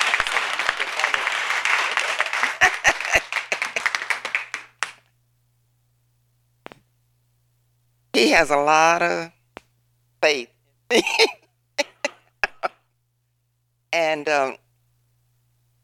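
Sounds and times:
laughter: 0:00.0 - 0:04.6, 0:10.9 - 0:12.8
small crowd applauding: 0:00.0 - 0:05.0
speech: 0:08.2 - 0:09.4, 0:10.2 - 0:11.3.

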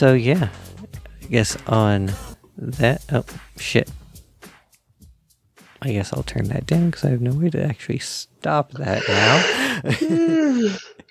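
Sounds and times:
speech: 0:00.0 - 0:00.7, 0:01.3 - 0:04.0, 0:05.8 - 0:11.0
person yawning: 0:08.9 - 0:11.0.

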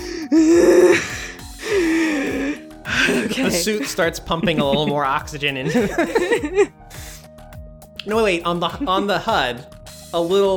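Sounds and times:
voice imitating panicked deep breathing: 0:00.0 - 0:03.3, 0:06.8 - 0:07.3
speech: 0:00.3 - 0:01.0, 0:03.6 - 0:06.8, 0:08.0 - 0:10.5
laughter: 0:03.0 - 0:06.7, 0:08.7 - 0:09.3.

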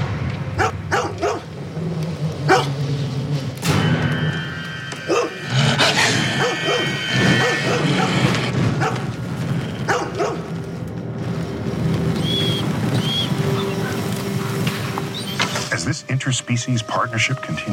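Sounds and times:
dense noisy outdoor background: 0:00.0 - 0:16.1
dogs barking and yipping: 0:00.5 - 0:01.6, 0:02.4 - 0:02.9, 0:05.0 - 0:09.2, 0:09.8 - 0:10.6
speech: 0:16.5 - 0:17.7.

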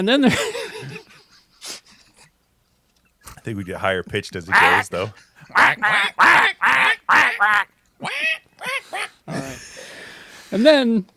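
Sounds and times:
speech: 0:00.0 - 0:01.1, 0:03.4 - 0:08.7, 0:10.5 - 0:11.1
person imitating a duck with nasal quacks: 0:04.5 - 0:09.4.

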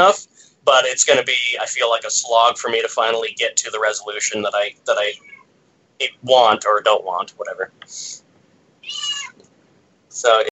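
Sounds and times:
speech: 0:00.0 - 0:05.4, 0:06.0 - 0:08.2, 0:08.8 - 0:09.2, 0:10.2 - 0:10.5
low noise: 0:00.0 - 0:10.5
cat meowing with an annoyed edge: 0:05.1 - 0:05.5, 0:08.8 - 0:09.4.

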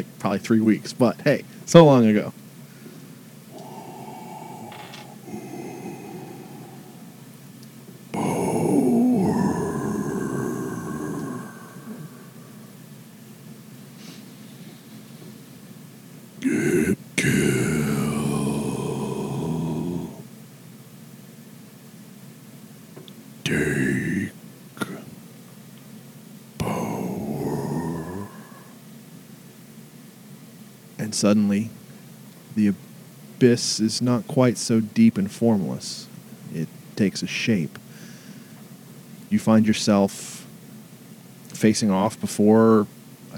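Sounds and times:
speech: 0:00.0 - 0:02.4, 0:31.2 - 0:31.6, 0:33.4 - 0:37.8, 0:39.3 - 0:40.4, 0:41.6 - 0:43.0
deep monstrous breathing with growling snore-like rumble: 0:03.5 - 0:07.3, 0:08.1 - 0:12.9, 0:16.4 - 0:20.2, 0:23.5 - 0:25.0, 0:26.6 - 0:28.8.

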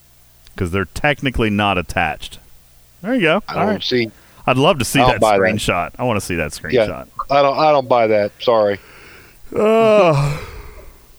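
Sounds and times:
speech: 0:00.6 - 0:02.4, 0:03.0 - 0:08.9, 0:09.5 - 0:10.5
person yawning: 0:08.9 - 0:11.1.

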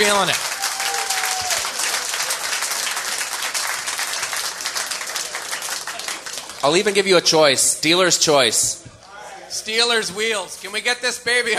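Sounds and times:
speech: 0:00.0 - 0:00.5, 0:06.6 - 0:08.9, 0:09.5 - 0:11.5
large audience applauding: 0:00.0 - 0:07.0.

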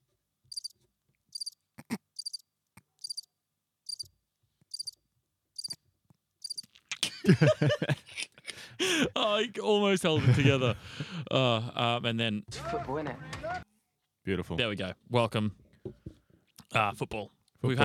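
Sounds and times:
cricket chirping in short high bursts: 0:00.5 - 0:01.6, 0:02.2 - 0:03.3, 0:03.9 - 0:04.1, 0:04.7 - 0:05.0, 0:05.6 - 0:05.8, 0:06.4 - 0:06.7
laughter: 0:06.9 - 0:11.7
speech: 0:07.3 - 0:13.7, 0:14.3 - 0:15.6, 0:16.7 - 0:17.8.

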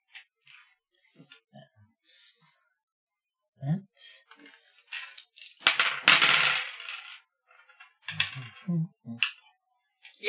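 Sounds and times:
handful of dice clattering as they are scooped together: 0:04.3 - 0:09.5.

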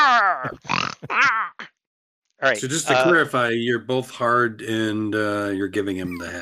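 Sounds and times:
person imitating pig squeals and grunts: 0:00.0 - 0:01.8, 0:06.0 - 0:06.3
speech: 0:00.4 - 0:01.4, 0:02.4 - 0:06.3.

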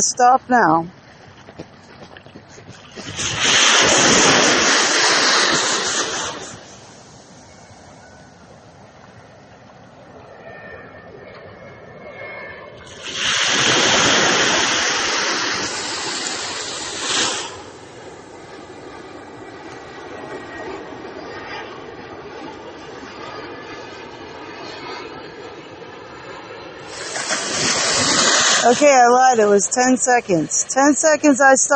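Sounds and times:
speech: 0:00.0 - 0:01.0, 0:28.7 - 0:31.7
ocean waves surging and washing out: 0:02.4 - 0:08.8, 0:12.9 - 0:21.1, 0:26.8 - 0:31.7.

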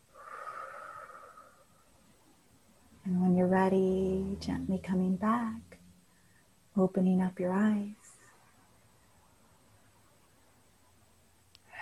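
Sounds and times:
slow deep breath during a guided relaxation breathing exercise: 0:00.0 - 0:02.0, 0:06.0 - 0:06.7
speech: 0:03.1 - 0:05.6, 0:06.8 - 0:08.2.

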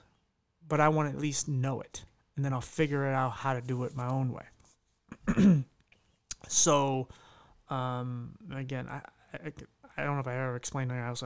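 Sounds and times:
speech: 0:00.7 - 0:04.5, 0:05.3 - 0:05.7, 0:06.4 - 0:11.2
throat clearing: 0:05.1 - 0:05.8.

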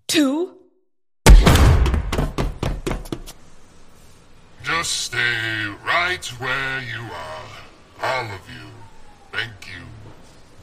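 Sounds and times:
speech: 0:00.1 - 0:00.6, 0:04.8 - 0:08.8, 0:09.4 - 0:10.0
door thudding and rattling as it swings: 0:01.3 - 0:03.2.

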